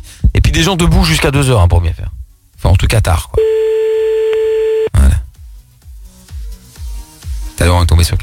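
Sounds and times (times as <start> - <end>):
speech: 0.5 - 3.6, 7.6 - 8.2
ringback tone of an outgoing telephone call: 3.4 - 4.9.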